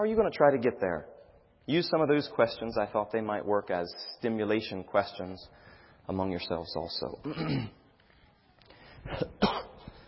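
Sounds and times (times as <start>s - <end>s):
speech: 0.0s - 7.8s, 9.0s - 9.6s
person with a cold coughing: 7.2s - 7.8s, 9.1s - 10.0s
throat clearing from someone with a cold: 7.2s - 7.8s, 9.1s - 9.9s.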